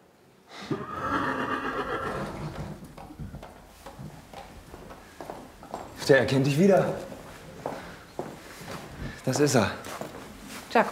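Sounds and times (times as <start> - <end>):
rescued horse whinnying in a long wavering neigh: 0.5 - 2.8
hoof clicks and shuffles on a hard floor: 2.1 - 10.8
speech: 6.1 - 7.1, 9.3 - 9.9.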